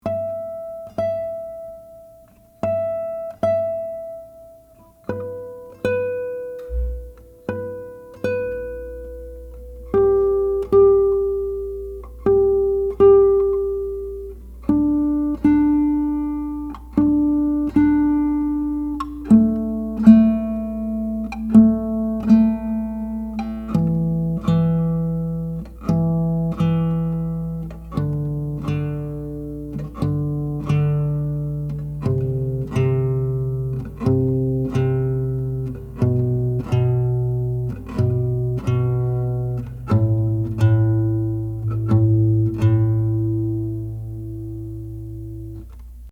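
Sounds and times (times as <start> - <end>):
guitar harmonic at the 12th fret: 0.0 - 46.1
fretted guitar note at the 12th fret: 6.7 - 7.4.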